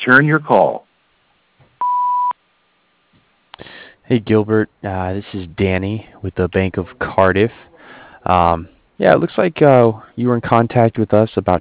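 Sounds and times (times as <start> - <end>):
speech: 0.0 - 0.9, 4.1 - 11.6
answering machine beep: 1.8 - 2.4.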